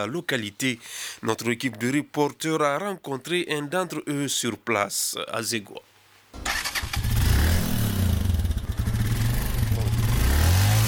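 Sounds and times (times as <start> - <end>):
speech: 0.0 - 6.4
motorcycle taxi engine starting and revving: 6.4 - 10.8.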